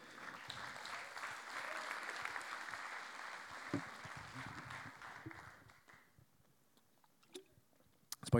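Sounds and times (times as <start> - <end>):
audience applause: 0.0 - 6.0.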